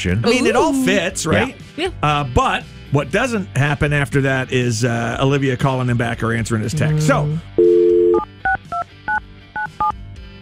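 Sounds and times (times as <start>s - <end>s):
speech: 0.0s - 7.7s
telephone dial tone: 7.6s - 10.0s.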